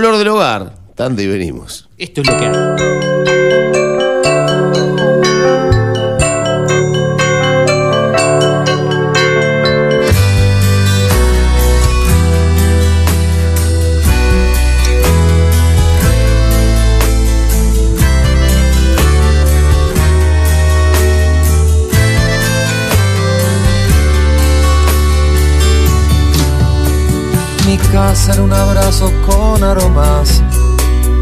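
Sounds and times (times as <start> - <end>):
speech: 0.0 - 3.8
lighter chiming guitar figure: 2.2 - 31.2
rock song intro on radio: 2.6 - 31.2
full band with bass and drums: 10.1 - 31.2.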